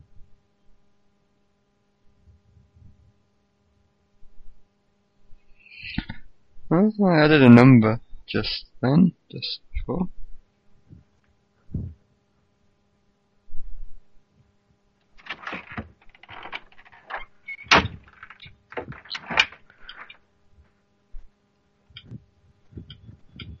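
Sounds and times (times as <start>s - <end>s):
speech: 6.7s - 10.2s
house door opening with latch rattles: 15.2s - 20.2s.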